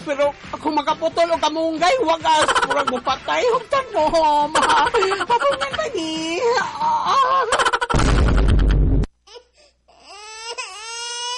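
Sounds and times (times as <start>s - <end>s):
speech: 0.1s - 7.7s
laughter: 2.4s - 3.8s, 4.5s - 6.0s, 7.1s - 8.4s
baby crying in loud wavering wails: 4.5s - 7.9s, 9.3s - 11.3s.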